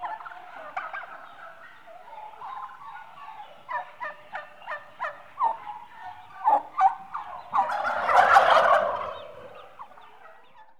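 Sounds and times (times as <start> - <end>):
eight month old turkeys calling, mostly hens: 0.0 - 10.6.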